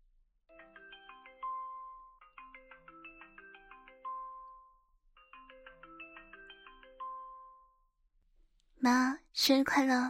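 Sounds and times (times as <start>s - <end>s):
melodic electronic video-call ringtone: 0.5s - 8.0s
speech: 8.8s - 10.0s.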